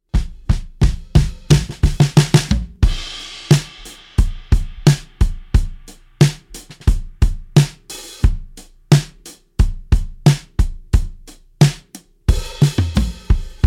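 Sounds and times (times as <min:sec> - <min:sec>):
acoustic drums with no effect: 0:00.0 - 0:13.6.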